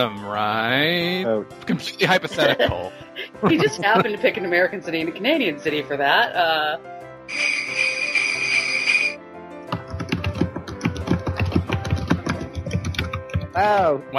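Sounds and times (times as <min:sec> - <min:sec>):
speech: 0:00.0 - 0:07.9, 0:13.6 - 0:14.1
laughter: 0:01.7 - 0:04.5
bright sustained ringing tone: 0:07.3 - 0:09.2
loud rapid clacking of a computer keyboard: 0:09.8 - 0:13.6.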